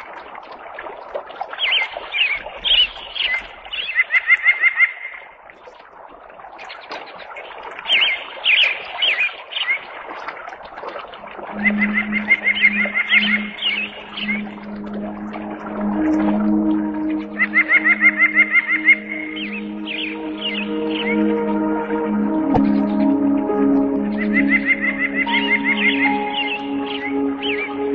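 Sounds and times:
water: 0.0s - 27.9s
birds calling: 11.5s - 15.0s, 17.0s - 21.4s, 22.4s - 27.9s.

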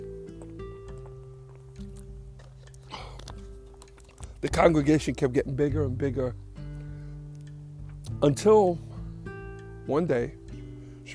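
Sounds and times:
person drinking water: 1.8s - 4.5s
speech: 4.4s - 6.4s, 8.2s - 8.9s, 9.9s - 10.4s.

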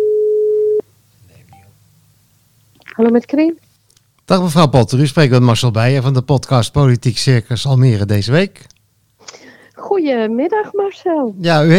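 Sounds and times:
telephone call tone on an outgoing call: 0.0s - 0.8s
speech: 3.0s - 3.6s, 4.3s - 9.4s, 10.0s - 11.7s.

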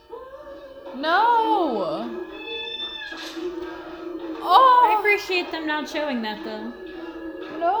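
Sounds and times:
speech: 1.0s - 2.2s, 4.4s - 6.8s, 7.6s - 7.7s
cat meowing: 2.0s - 3.6s.

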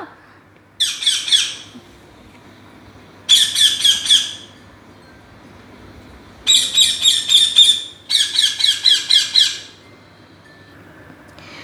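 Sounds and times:
faint low hum: 0.0s - 11.6s
green parrot with a red beak squawking: 0.8s - 1.8s, 3.2s - 4.6s, 6.4s - 9.8s.

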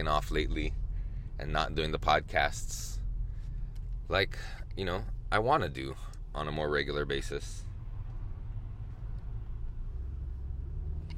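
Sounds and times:
speech: 0.0s - 0.8s, 1.4s - 3.0s, 4.1s - 7.7s
faint car engine hum: 0.0s - 11.1s
road rumble inside a moving car: 0.0s - 11.1s.

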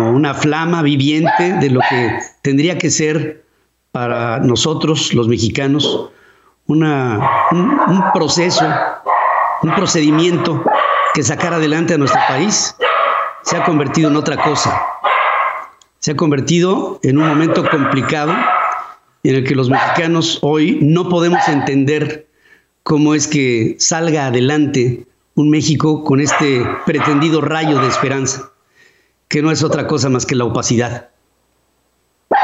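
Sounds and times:
speech: 0.2s - 3.4s, 4.0s - 9.0s, 9.6s - 15.0s, 16.0s - 18.6s, 19.2s - 22.2s, 22.8s - 28.5s, 29.3s - 31.1s
dog barking at home: 1.2s - 2.3s, 7.2s - 11.4s, 12.0s - 15.8s, 17.2s - 19.0s, 19.7s - 20.2s, 21.3s - 21.8s, 26.3s - 28.5s.

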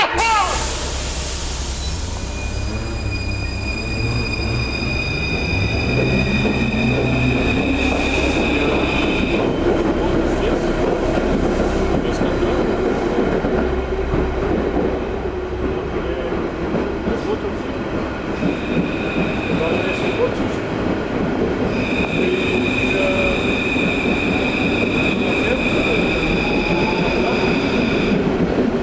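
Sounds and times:
metro train rumbling through a tunnel: 0.1s - 28.8s
high metallic whine: 0.2s - 9.3s.

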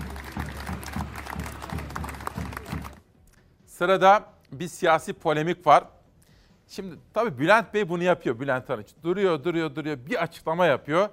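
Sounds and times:
protesting crowd of business owners and workers clapping: 0.0s - 3.1s
speech: 3.8s - 6.0s, 6.7s - 11.1s.

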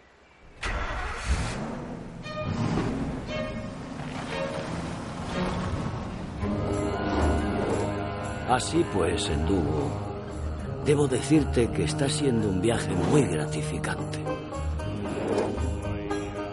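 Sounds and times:
car engine starting and revving as the car pulls away: 0.6s - 8.5s, 12.4s - 16.3s
speech: 8.5s - 10.1s, 10.9s - 14.6s.

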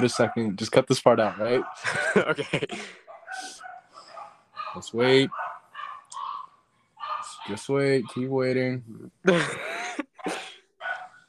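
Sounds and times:
dog barking and yipping: 0.0s - 0.5s, 1.2s - 2.0s, 3.1s - 8.2s, 10.8s - 11.2s
speech: 0.0s - 3.6s, 4.7s - 5.5s, 7.4s - 9.7s
laughter: 1.1s - 3.5s, 9.2s - 10.5s.

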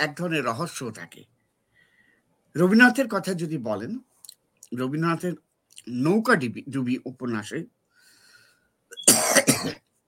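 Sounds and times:
speech: 0.0s - 1.4s, 2.6s - 4.1s, 4.7s - 7.8s
person coughing during a talk: 9.0s - 9.8s.

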